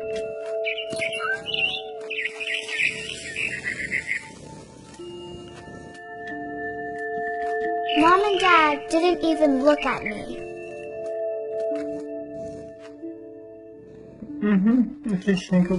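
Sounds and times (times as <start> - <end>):
frightened bird chirping in high notes: 0.4 - 5.6, 6.8 - 10.8
speech: 8.0 - 10.4, 14.5 - 15.7.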